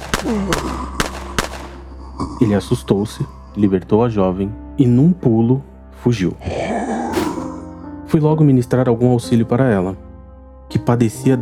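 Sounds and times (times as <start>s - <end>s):
handgun gunshots as its ammunition is emptied: 0.0s - 1.7s
speech: 0.2s - 1.0s, 2.4s - 6.7s, 8.1s - 10.0s, 10.7s - 11.4s.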